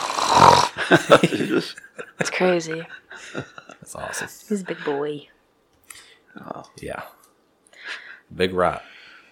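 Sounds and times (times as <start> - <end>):
short-faced dog snoring: 0.0 - 0.7
laughter: 0.8 - 5.0
speech: 0.8 - 5.3, 5.9 - 7.2, 7.9 - 8.9.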